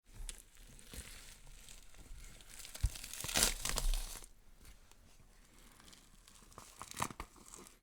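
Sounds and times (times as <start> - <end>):
skin peeling from bone: 0.3 - 4.3, 5.7 - 7.8.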